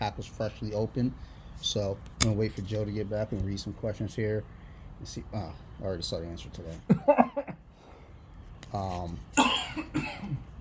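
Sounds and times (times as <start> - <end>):
speech: 0.2 - 7.4, 8.7 - 10.5
man coughing after inhaling soda the wrong way: 9.4 - 10.5.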